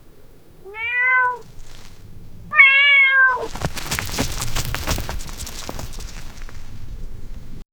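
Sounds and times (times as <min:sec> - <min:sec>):
cat sprinting through sand: 0:00.1 - 0:07.6.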